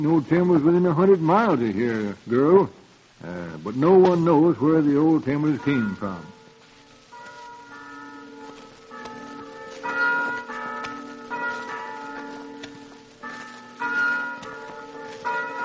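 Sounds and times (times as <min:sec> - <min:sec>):
speech: 0:00.0 - 0:06.4
church bells chiming a melody: 0:03.7 - 0:15.6.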